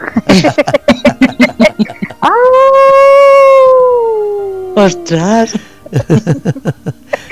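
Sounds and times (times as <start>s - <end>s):
laughter: 0.0s - 2.3s, 5.5s - 7.3s
speech: 0.3s - 0.9s, 4.8s - 6.7s
person imitating a dog's howl: 2.2s - 5.2s.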